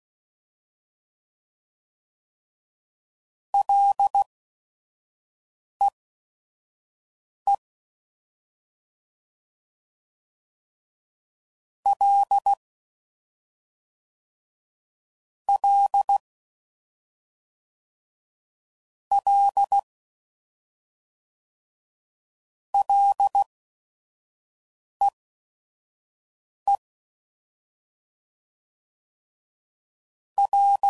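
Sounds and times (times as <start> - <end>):
Morse code CW code groups at 5 WPM: 3.6 - 4.3, 11.9 - 12.6, 15.6 - 16.2, 19.1 - 19.8, 22.8 - 23.5, 30.4 - 30.8.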